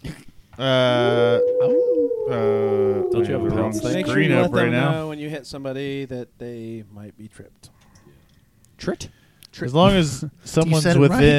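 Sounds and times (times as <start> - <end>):
speech: 0.6 - 7.8, 8.8 - 11.3
person imitating a dog howling: 0.9 - 5.1
short breathy vocal sound: 1.0 - 5.1.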